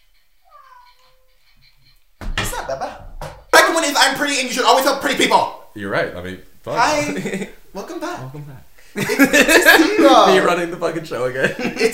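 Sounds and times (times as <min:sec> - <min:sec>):
faint hiss: 0:00.0 - 0:11.9
pet cat meowing: 0:00.4 - 0:01.4
speech: 0:02.7 - 0:03.2, 0:03.8 - 0:11.9
laughter: 0:06.8 - 0:07.6, 0:09.0 - 0:11.9.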